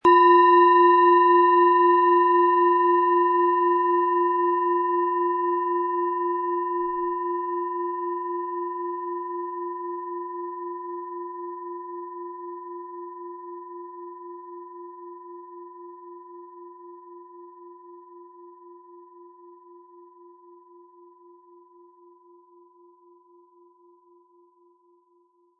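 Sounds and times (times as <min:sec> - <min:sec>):
12 cm planet singing bowl struck with mallet: 0:00.0 - 0:20.4.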